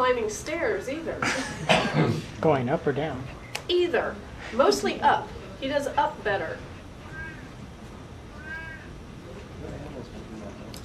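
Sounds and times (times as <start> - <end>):
steady rumbling noise: 0.0 - 10.8
speech: 0.1 - 6.7
male cat meowing in protest: 7.0 - 7.6, 8.3 - 9.0.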